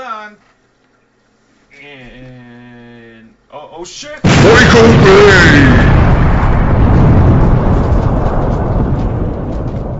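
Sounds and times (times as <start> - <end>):
speech: 3.6 - 6.1
explosion sound effect with deep rumbling: 4.2 - 9.9.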